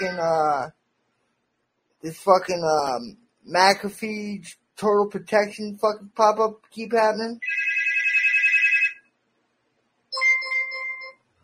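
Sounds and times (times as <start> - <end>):
speech: 0.0 - 0.8, 2.0 - 7.6
electronic phone ringtone during an attempted phone call: 7.4 - 9.1, 10.1 - 11.3.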